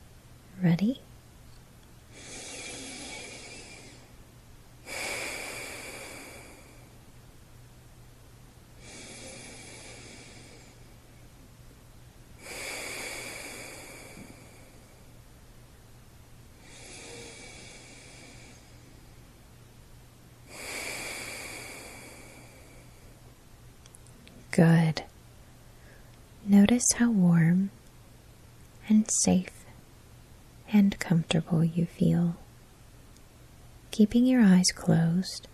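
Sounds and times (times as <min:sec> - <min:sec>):
faint low steady hum: 0:00.0 - 0:35.5
speech: 0:00.6 - 0:01.1, 0:24.6 - 0:25.0, 0:26.6 - 0:27.8, 0:29.0 - 0:29.6, 0:30.7 - 0:32.4, 0:34.0 - 0:35.5
slow deep breathing: 0:02.1 - 0:04.2, 0:04.8 - 0:07.0, 0:08.8 - 0:11.3, 0:12.4 - 0:15.2, 0:16.6 - 0:19.4, 0:20.4 - 0:23.3, 0:25.6 - 0:26.2.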